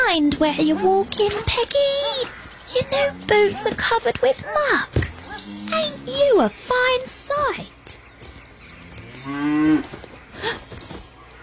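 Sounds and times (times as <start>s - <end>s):
speech: 0.1s - 5.0s, 5.7s - 8.0s, 9.2s - 10.7s
cow mooing: 2.0s - 6.3s, 8.7s - 10.0s.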